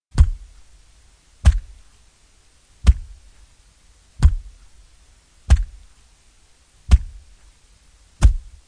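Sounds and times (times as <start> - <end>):
axe chopping tree: 0.1 - 0.4, 1.4 - 1.8, 2.8 - 3.2, 4.2 - 4.5, 5.5 - 5.8, 6.9 - 7.2, 8.2 - 8.5.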